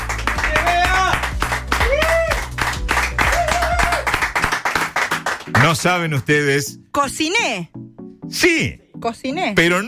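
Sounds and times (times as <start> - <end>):
people cheering and whooping: 0.0 - 4.9
crowd applauding: 0.0 - 6.0
speech: 5.6 - 9.8.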